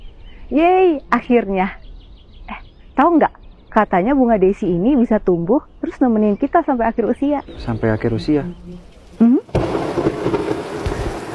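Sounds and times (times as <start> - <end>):
speech: 0.5 - 1.8, 3.0 - 9.3
steady rainfall: 7.4 - 11.3
low rolling thunder: 8.9 - 11.3.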